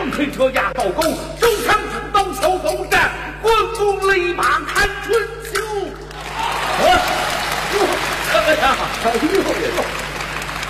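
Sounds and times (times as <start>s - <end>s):
speech: 0.1s - 1.8s, 2.7s - 5.4s, 8.5s - 9.9s
audience applause at a live stage performance: 6.1s - 10.6s.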